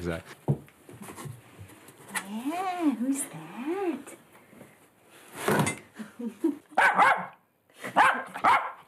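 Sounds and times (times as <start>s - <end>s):
speech: 0.0s - 0.5s, 2.3s - 4.2s, 6.2s - 8.6s
dog barking: 6.8s - 8.8s.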